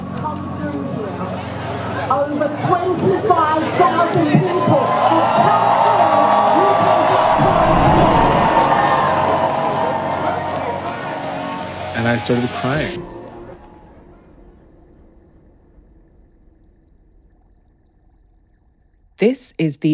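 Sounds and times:
large crowd screaming and cheering at an event: 1.1s - 14.4s
speech: 12.1s - 13.1s, 19.2s - 19.9s.

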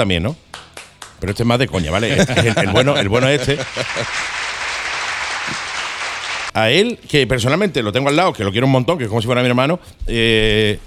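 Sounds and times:
speech: 0.0s - 0.4s, 1.2s - 4.4s, 6.6s - 10.8s
laughter: 1.8s - 4.4s
applause from a sizable crowd: 2.5s - 6.5s.

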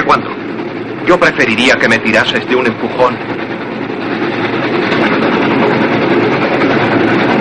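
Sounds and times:
train travelling along the tracks, wheels and carriages rumbling: 0.0s - 7.3s
speech: 0.1s - 0.4s, 1.0s - 3.5s.

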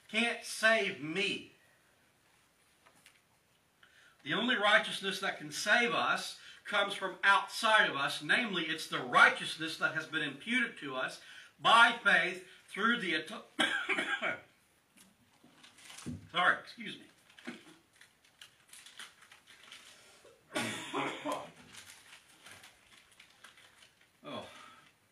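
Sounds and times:
speech: 0.1s - 1.5s, 4.2s - 14.5s, 16.1s - 17.6s
quiet rustling: 2.1s - 4.4s, 14.9s - 20.4s, 21.1s - 24.2s
harsh raspy coughs in a coughing fit: 13.6s - 14.4s, 20.5s - 21.5s
throat-clearing rasp: 20.5s - 21.5s.

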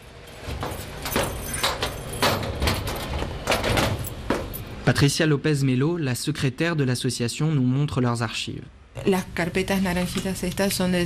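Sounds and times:
heavy iron archive cabinet door clanking and rattling open: 0.4s - 4.6s
speech: 4.9s - 11.0s.

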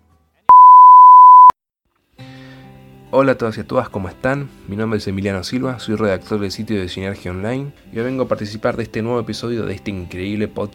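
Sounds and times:
single electronic beep from an answering machine: 0.5s - 1.5s
speech: 3.1s - 10.7s.

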